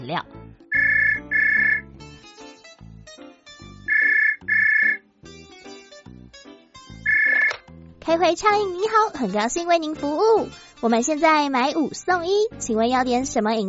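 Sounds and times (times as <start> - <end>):
speech: 0.0 - 0.4, 8.1 - 13.6
light instrumental music: 0.6 - 12.5
telephone ringing at a drink shop in the South District of Tainan: 0.7 - 1.9, 3.8 - 5.0, 6.4 - 7.6.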